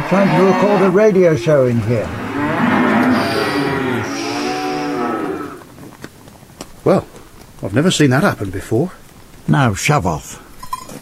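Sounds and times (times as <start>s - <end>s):
cow mooing in a long drawn-out bellow: 0.0s - 5.7s
speech: 0.1s - 2.2s, 6.8s - 10.4s.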